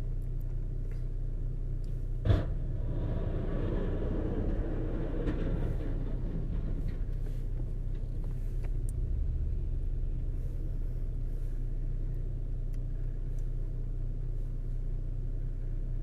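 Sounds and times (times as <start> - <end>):
car engine rumbling: 0.0 - 16.0.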